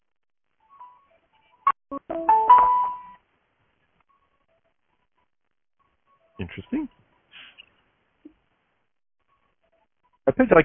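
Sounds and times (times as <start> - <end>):
speech: 1.9 - 3.0, 6.4 - 7.0, 10.3 - 10.6
phone electronic ringtone for an incoming call: 1.9 - 3.2.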